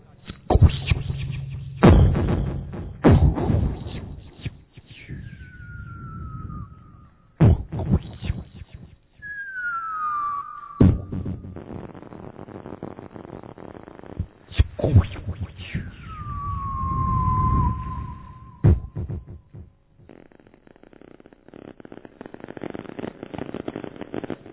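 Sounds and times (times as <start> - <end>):
fireworks and firecrackers exploding in the sky: 0.0 - 24.5
whistling rockets gliding downward in pitch: 0.4 - 12.0, 14.4 - 19.0.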